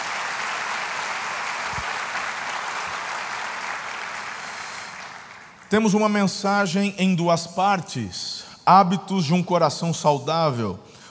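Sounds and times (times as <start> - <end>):
large church audience applauding: 0.0 - 5.8
speech: 5.7 - 11.0.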